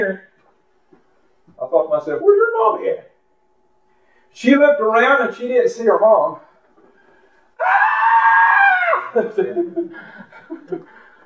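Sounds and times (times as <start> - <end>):
speech: 0.0 - 0.3, 1.7 - 3.1, 4.3 - 6.5, 7.6 - 7.9
voice imitating a little girl screaming: 7.6 - 9.3
choppy chuckling: 9.2 - 11.2.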